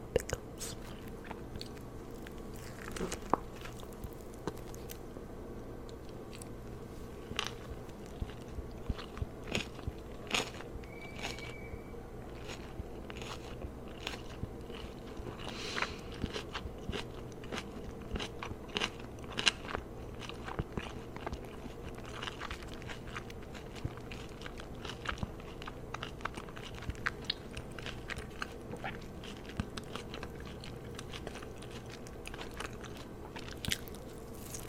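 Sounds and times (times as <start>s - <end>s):
low steady hum: 0.0s - 34.6s
crunchy bites and chewing of spicy chicken burger and onion rings: 0.8s - 5.0s, 7.2s - 34.6s
tonal squeak: 10.8s - 12.0s.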